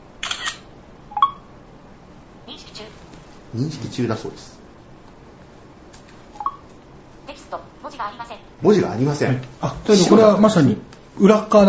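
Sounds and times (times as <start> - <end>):
smartphone camera shutter sounds with flash set to auto: 0.2 - 0.7
speech: 3.5 - 4.6, 8.2 - 11.6.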